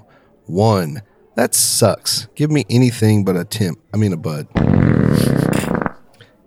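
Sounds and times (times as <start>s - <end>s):
speech: 0.5s - 5.7s
loud belch made as a beer rating: 4.6s - 6.0s.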